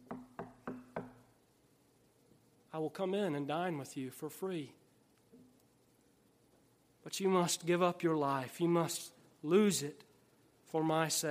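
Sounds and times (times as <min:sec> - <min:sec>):
knocking on hard surface: 0:00.0 - 0:01.2
speech: 0:02.8 - 0:04.8, 0:07.2 - 0:10.1, 0:10.7 - 0:11.2.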